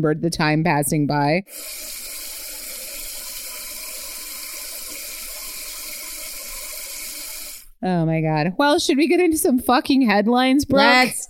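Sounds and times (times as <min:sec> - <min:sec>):
speech: 0:00.0 - 0:02.2, 0:07.8 - 0:11.2
faucet running with water splashing into a sink: 0:01.5 - 0:07.7.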